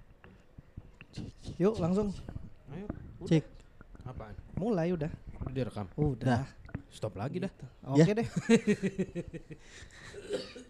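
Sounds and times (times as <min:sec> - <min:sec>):
speech: 0:01.6 - 0:03.6, 0:04.3 - 0:10.6
person coughing in short raspy bursts: 0:10.1 - 0:10.6.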